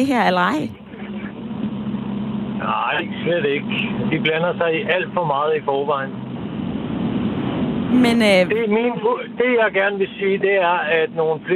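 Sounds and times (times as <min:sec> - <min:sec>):
speech: 0:00.0 - 0:00.8, 0:02.6 - 0:06.3, 0:07.9 - 0:11.5
car engine hum: 0:00.0 - 0:09.0.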